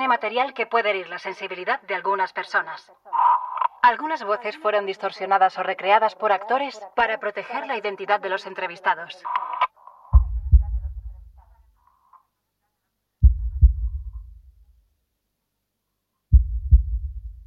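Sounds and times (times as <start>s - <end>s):
speech: 0.1s - 3.2s, 3.8s - 9.6s
slow heartbeat of bradycardia: 10.1s - 11.5s, 13.2s - 14.7s, 16.3s - 17.4s.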